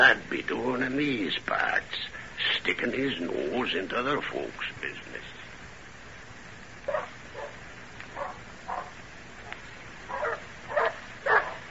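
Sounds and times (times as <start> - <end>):
speech: 0.0 - 5.4
steady hiss: 0.0 - 11.6
dogs barking: 6.9 - 9.0, 10.1 - 11.6.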